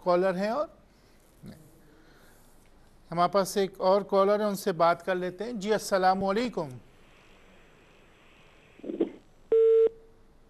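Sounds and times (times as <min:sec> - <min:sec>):
speech: 0:00.0 - 0:00.8, 0:01.4 - 0:01.6, 0:03.1 - 0:06.9
busy-tone beep on a phone line after a dropped call: 0:09.5 - 0:10.0.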